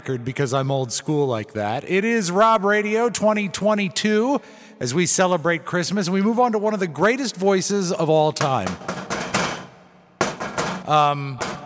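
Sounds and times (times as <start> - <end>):
speech: 0.0 - 9.1, 10.9 - 11.5
knocking on a door: 8.6 - 11.6.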